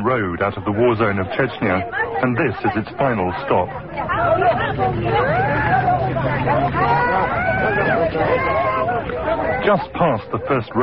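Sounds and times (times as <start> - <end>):
dense hubbub of many overlapping voices of refugee women and children: 0.0 - 10.8
speech: 0.0 - 10.8.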